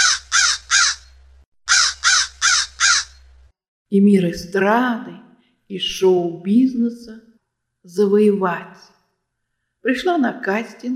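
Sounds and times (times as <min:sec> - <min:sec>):
crow cawing: 0:00.0 - 0:03.2
speech: 0:03.9 - 0:08.9, 0:09.8 - 0:10.9.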